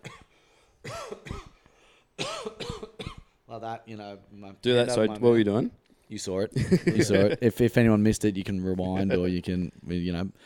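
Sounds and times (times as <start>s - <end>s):
person coughing: 0.0s - 1.6s, 2.2s - 3.4s
speech: 3.6s - 10.4s
laughter: 6.6s - 7.5s.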